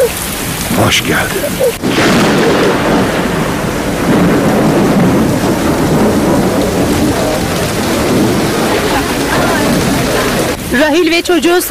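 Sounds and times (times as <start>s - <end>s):
heavy rain pouring: 0.0s - 11.7s
thunder rumbling: 0.0s - 11.7s
speech: 0.8s - 3.4s, 10.8s - 11.7s.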